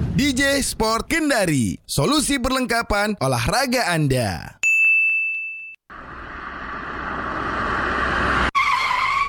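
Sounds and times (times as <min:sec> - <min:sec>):
speech: 0:00.2 - 0:04.6
short ringing ding: 0:04.6 - 0:05.8
car tires skidding as the car nearly hits a motorbike: 0:07.5 - 0:09.2.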